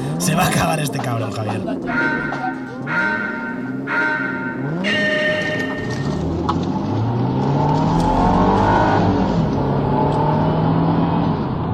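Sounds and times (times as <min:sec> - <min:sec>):
speech: 0:00.2 - 0:05.2
racing car engine revving through gear shifts: 0:02.8 - 0:11.7.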